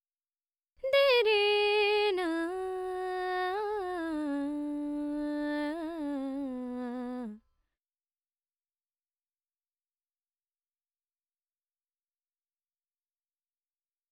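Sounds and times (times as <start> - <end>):
dry female vocals: 0.8 - 7.4.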